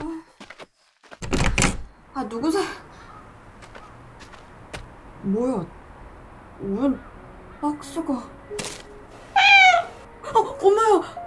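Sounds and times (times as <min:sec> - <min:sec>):
speech: 0:02.2 - 0:02.9, 0:05.2 - 0:05.8, 0:06.6 - 0:08.7, 0:10.6 - 0:11.2
cat meowing: 0:09.3 - 0:10.1.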